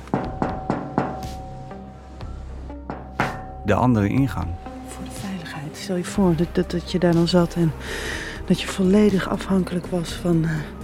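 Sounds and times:
knocking on an iron hatch: 0:00.0 - 0:01.7, 0:02.7 - 0:03.7
speech: 0:03.7 - 0:04.6, 0:05.9 - 0:10.8.

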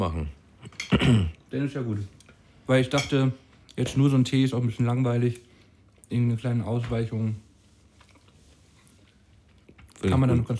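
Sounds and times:
speech: 0:00.0 - 0:05.5, 0:06.1 - 0:07.4, 0:10.0 - 0:10.5
wet chewing and lip-smacking while eating: 0:07.9 - 0:10.2.

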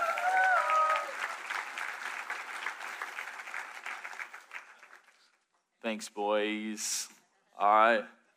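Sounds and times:
crowd applauding people coming up to share summer camp testimonies: 0:00.0 - 0:05.4
speech: 0:05.9 - 0:08.2.

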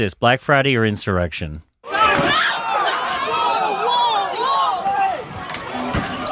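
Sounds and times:
speech: 0:00.0 - 0:01.7
Black Friday shopping crowd shouting and clamoring: 0:01.8 - 0:06.3.

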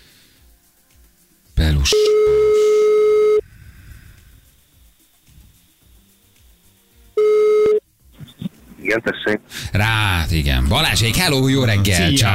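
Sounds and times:
speech: 0:01.8 - 0:02.2, 0:08.9 - 0:12.3
outgoing telephone call ringback tones: 0:01.9 - 0:03.4, 0:07.2 - 0:07.8.

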